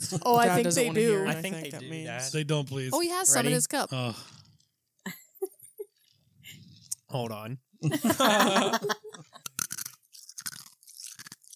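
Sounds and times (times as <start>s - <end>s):
laughter: 0.0s - 2.4s, 7.8s - 9.4s
speech: 0.1s - 4.4s, 7.1s - 9.0s
chewing chewy milk tea jelly cubes: 9.3s - 11.5s.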